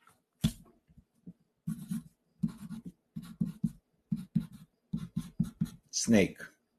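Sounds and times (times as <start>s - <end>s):
pen scratching while handwriting a short word: 1.7s - 5.9s
speech: 6.0s - 6.5s.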